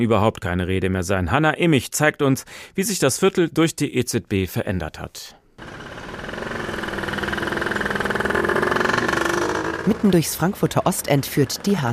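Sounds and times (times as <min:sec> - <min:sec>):
speech: 0:00.0 - 0:05.8, 0:09.8 - 0:11.9
morning traffic engine drone on a busy street in Frankfurt's Ostend, Germany: 0:05.6 - 0:11.9.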